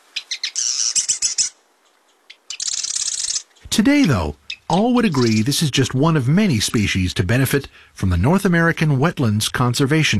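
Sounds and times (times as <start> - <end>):
Marsh Wren singing clicking notes and a dry rapid grating trill: 0.2 - 5.7
speech: 3.7 - 10.1.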